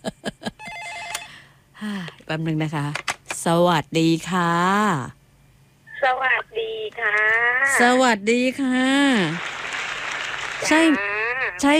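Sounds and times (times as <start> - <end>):
faint telephone with warbling electronic ring: 0.6 - 1.4
speech: 2.3 - 5.2, 6.0 - 9.5, 10.6 - 11.7.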